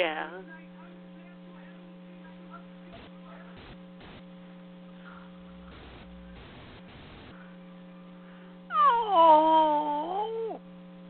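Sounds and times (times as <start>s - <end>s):
speech: 0.0s - 0.7s
steady low electrical hum: 0.0s - 11.0s
dog whimpering in pain: 8.7s - 10.6s.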